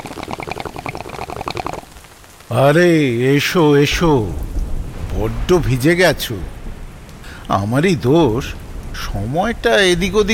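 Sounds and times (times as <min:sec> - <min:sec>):
water bubbling in a hookah being smoked in a sitting room: 0:00.0 - 0:02.1
speech: 0:02.5 - 0:04.4, 0:05.2 - 0:06.6, 0:07.5 - 0:10.3.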